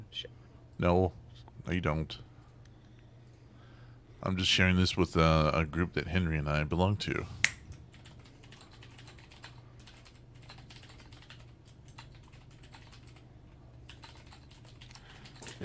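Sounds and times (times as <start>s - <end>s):
low constant hum: 0.0s - 15.6s
speech: 0.1s - 2.3s, 4.2s - 7.4s
rapid clicky computer keyboard typing: 7.9s - 13.2s, 13.9s - 15.6s.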